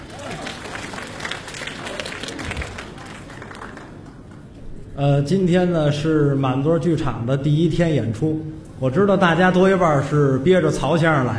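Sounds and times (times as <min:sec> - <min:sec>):
theatre audience applause: 0:00.0 - 0:04.6
speech: 0:05.0 - 0:11.3.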